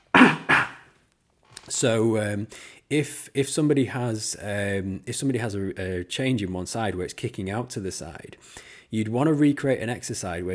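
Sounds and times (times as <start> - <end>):
person clearing throat: 0.0 - 0.9
person coughing: 0.1 - 0.9
speech: 1.7 - 10.5.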